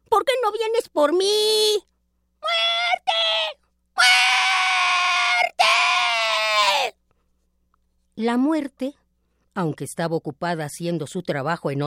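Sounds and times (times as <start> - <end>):
speech: 0.2 - 4.9, 8.2 - 9.0, 9.6 - 11.8
elderly woman screaming: 2.4 - 7.0.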